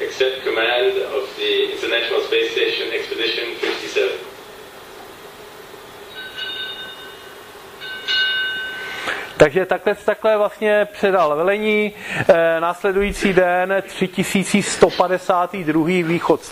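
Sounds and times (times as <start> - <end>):
voices: 0.0 - 4.4, 9.4 - 16.5
speech: 0.2 - 4.2, 9.4 - 16.5
ship's bell struck during a change-of-command ceremony aboard the International Space Station: 6.0 - 9.1.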